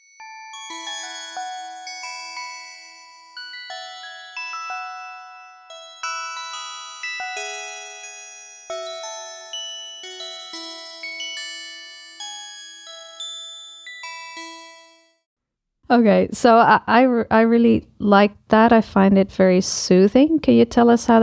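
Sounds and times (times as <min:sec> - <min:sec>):
bright bell tones chiming through a musical scale: 0:00.0 - 0:15.2
speech: 0:15.9 - 0:21.2.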